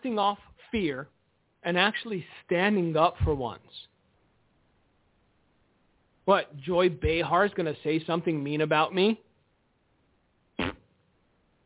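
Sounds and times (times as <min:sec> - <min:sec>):
speech: 0:00.0 - 0:03.8, 0:06.3 - 0:09.3
raspberry blown with the lips imitating a fart: 0:10.6 - 0:10.9.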